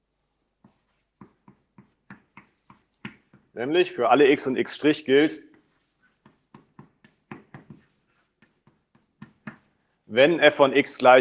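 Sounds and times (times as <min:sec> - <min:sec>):
scratchy handwriting strokes during a math lecture: 0:00.6 - 0:03.4, 0:05.5 - 0:09.8
speech: 0:03.6 - 0:05.5, 0:10.2 - 0:11.1.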